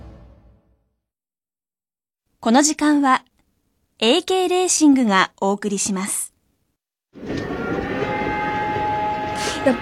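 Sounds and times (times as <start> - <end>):
speech: 2.4 - 3.3, 4.0 - 6.3, 9.7 - 9.8
train whistle blast: 7.4 - 9.8.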